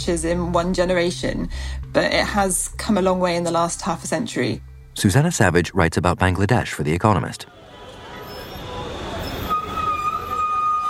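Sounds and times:
speech: 0.0 - 7.6
busy street traffic with rickshaws cars and buses in Dhaka Bangladesh: 7.4 - 10.8
thin high-pitched ringing squeal: 8.2 - 10.8.

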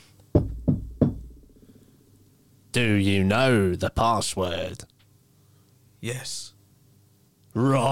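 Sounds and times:
firm knocking on a wooden door: 0.3 - 1.5
speech: 2.8 - 4.9, 6.0 - 6.5, 7.6 - 7.9.

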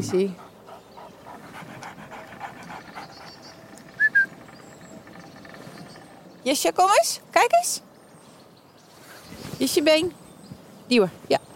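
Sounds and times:
speech: 0.0 - 0.4, 6.4 - 7.9, 9.6 - 10.2, 10.9 - 11.5
female dog panting after running in a forest: 0.0 - 4.5.

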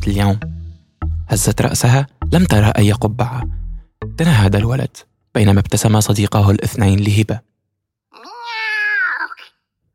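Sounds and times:
speech: 0.1 - 0.5, 1.3 - 3.6, 4.2 - 7.5
cat meowing: 8.1 - 9.5.

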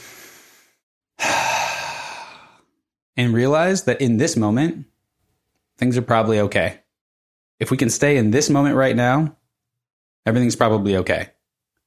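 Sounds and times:
big deep breath during a guided calming exercise: 0.0 - 2.8
speech: 3.2 - 4.9, 5.8 - 6.8, 7.6 - 9.4, 10.2 - 11.4.

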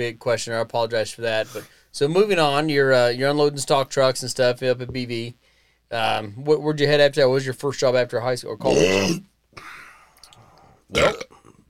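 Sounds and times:
speech: 0.0 - 9.8, 10.9 - 11.3
single loud burp in a studio: 8.6 - 9.3, 10.9 - 11.6.

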